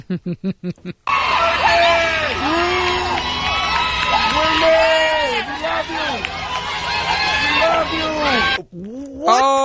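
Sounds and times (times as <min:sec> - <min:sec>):
crowd yelling and cheering outside a funeral home: 0:01.1 - 0:08.6.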